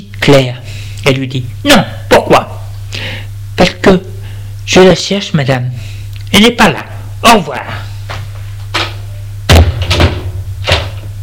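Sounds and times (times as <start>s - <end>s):
low steady hum: 0.0s - 11.2s
speech: 0.2s - 2.6s, 3.6s - 4.1s, 4.7s - 7.9s
door shutting with a heavy thud: 8.8s - 11.1s.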